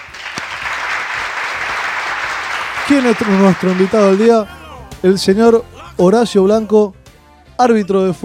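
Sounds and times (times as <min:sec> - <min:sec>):
applause greeting an invited guest: 0:00.0 - 0:04.4
speech: 0:02.9 - 0:07.0, 0:07.6 - 0:08.2.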